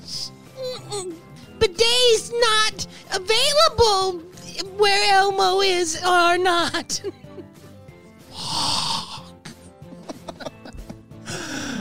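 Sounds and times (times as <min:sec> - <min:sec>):
speech: 0:01.8 - 0:07.2
laughter: 0:06.8 - 0:07.7, 0:09.5 - 0:11.1
snorts: 0:08.3 - 0:09.5
loud raspy cough with throaty hacks: 0:08.5 - 0:11.7.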